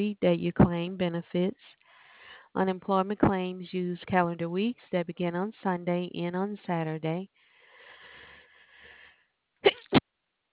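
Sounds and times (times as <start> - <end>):
speech: 0.0 - 1.8, 2.5 - 7.4
breathy inhale: 1.8 - 2.5, 7.4 - 9.3
person sneezing: 9.7 - 10.0.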